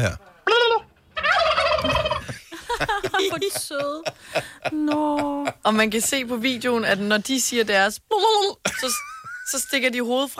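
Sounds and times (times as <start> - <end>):
speech: 0.0 - 0.3, 3.3 - 10.3
turkeys gobbling and yelping: 0.4 - 2.3
laughter: 1.8 - 5.6.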